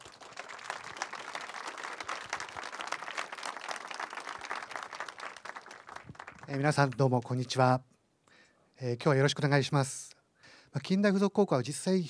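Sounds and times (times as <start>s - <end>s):
audience applause welcoming a speaker: 0.0s - 6.8s
speech: 6.5s - 7.9s, 8.8s - 10.1s, 10.8s - 12.0s.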